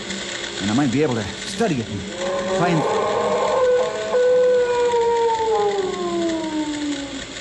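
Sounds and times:
speech: 0:00.6 - 0:03.2
unknown creature howling and wailing: 0:02.1 - 0:07.3.

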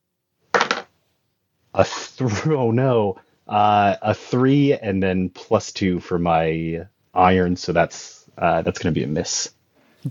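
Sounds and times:
challenge dice rolling on a table during a game: 0:00.5 - 0:01.0
speech: 0:01.8 - 0:10.0.

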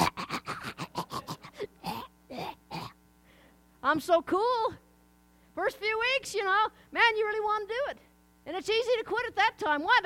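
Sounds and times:
person faking the coughing and choking of a new smoker: 0:00.0 - 0:03.0
speech: 0:03.9 - 0:04.8, 0:05.6 - 0:10.0.

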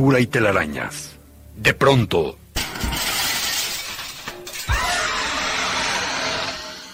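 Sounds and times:
speech: 0:00.0 - 0:02.9
tinkling glass shards scattering and settling: 0:02.6 - 0:04.7
mirror crashing down and shattering: 0:02.6 - 0:05.5.

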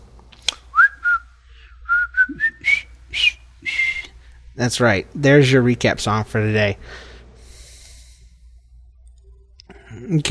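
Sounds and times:
group of girls whistling a short bouncy melody: 0:00.7 - 0:01.3, 0:01.9 - 0:04.1
speech: 0:04.6 - 0:07.1.

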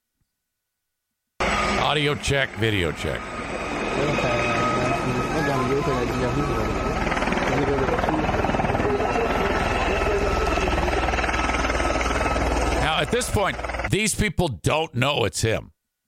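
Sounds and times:
helicopter landing at a funeral in Belgium: 0:01.4 - 0:14.0
speech: 0:01.9 - 0:03.3, 0:04.0 - 0:04.3, 0:13.1 - 0:15.7.

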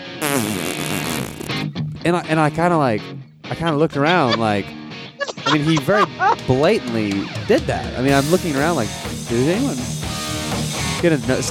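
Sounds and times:
voice imitating a fart with a buzzy lip raspberry: 0:00.2 - 0:01.6, 0:05.2 - 0:06.4
speech: 0:00.4 - 0:00.9, 0:02.0 - 0:04.8, 0:05.5 - 0:10.0, 0:11.0 - 0:11.4
laughter: 0:03.5 - 0:07.5.

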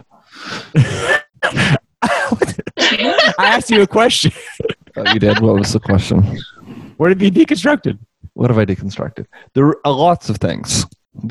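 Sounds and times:
speech: 0:00.3 - 0:01.1, 0:03.4 - 0:04.4, 0:05.0 - 0:11.2
harsh coughs: 0:00.8 - 0:03.2
laughter: 0:00.8 - 0:07.8.

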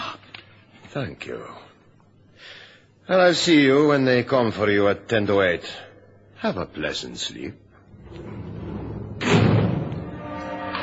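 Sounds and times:
speech: 0:00.9 - 0:01.7, 0:02.4 - 0:08.3
heavy steel cell door slamming shut with metallic reverberation: 0:07.9 - 0:10.7.

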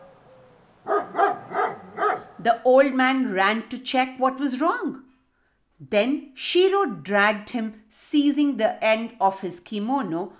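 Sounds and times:
dog barking in a field behind a house: 0:00.0 - 0:02.4
speech: 0:02.4 - 0:05.1, 0:05.8 - 0:10.3.

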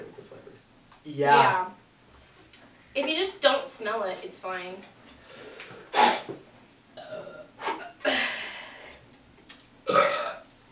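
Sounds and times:
speech: 0:01.0 - 0:01.8, 0:03.0 - 0:05.5
person burping after drinking sparkling water: 0:07.0 - 0:08.2, 0:09.8 - 0:10.5.

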